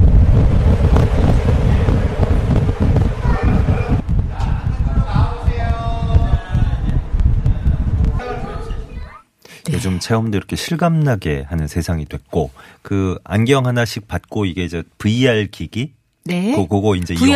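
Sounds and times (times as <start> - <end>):
strong simulated typhoon wind blasting close to the microphone: 0.0 - 9.1
speech: 9.9 - 17.3.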